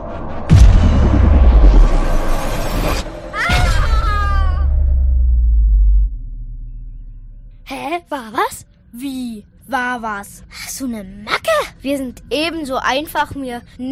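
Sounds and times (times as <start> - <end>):
loud crash of a craft landing: 0.0 - 7.6
heavy impact of a craft landing: 0.0 - 7.7
speech: 10.0 - 13.9.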